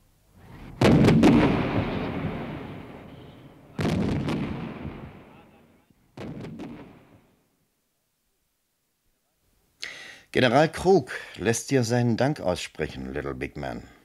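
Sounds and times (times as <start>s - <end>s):
artillery guns firing in a battle: 0.6s - 5.4s, 6.2s - 7.2s
speech: 10.3s - 14.0s.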